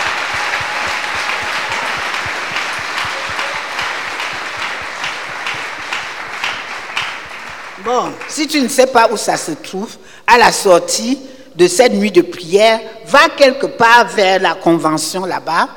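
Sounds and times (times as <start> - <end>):
large crowd clapping with rhythmic beats: 0.0 - 9.0
speech: 7.9 - 15.7.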